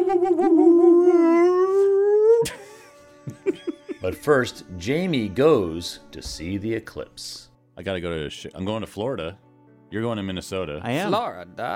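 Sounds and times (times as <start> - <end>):
howler monkey howling: 0.0 - 2.5
laughter: 2.4 - 4.5
speech: 4.0 - 11.7.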